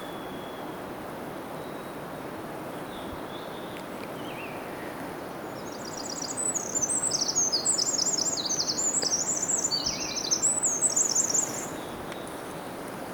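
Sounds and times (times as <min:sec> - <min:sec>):
faint background noise: 0:00.0 - 0:13.1
Eurasian wren Troglodytes troglodytes singing high-pitched trills and metallic notes: 0:05.6 - 0:12.0.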